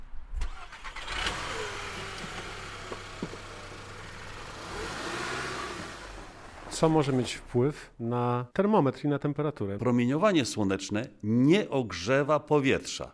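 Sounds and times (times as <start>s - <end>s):
car engine cranking and starting as the vehicle pulls away: 0.4s - 7.6s
speech: 6.8s - 13.1s.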